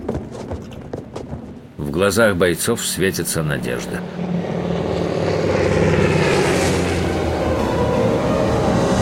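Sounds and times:
speech: 1.8s - 4.6s
propeller airplane flying over barracks: 2.8s - 9.0s.

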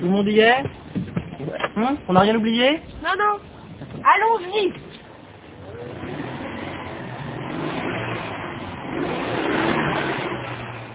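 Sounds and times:
speech: 0.0s - 0.8s, 1.8s - 4.8s
car starting noisily and driving off: 0.0s - 10.9s
road noise: 0.0s - 10.9s.

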